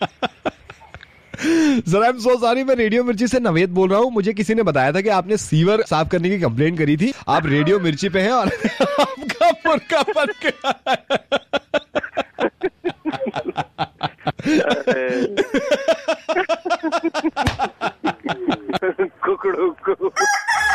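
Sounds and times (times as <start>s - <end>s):
laughter: 0.0s - 1.8s, 7.1s - 20.2s
speech: 1.8s - 11.4s
rooster crowing: 20.2s - 20.7s.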